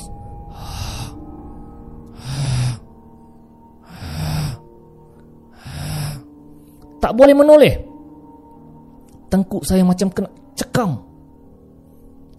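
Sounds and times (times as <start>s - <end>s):
long heavy breathing exhale in a bathroom: 0.5s - 3.0s, 3.8s - 4.8s, 5.5s - 6.8s
speech: 7.0s - 7.9s, 9.3s - 11.1s.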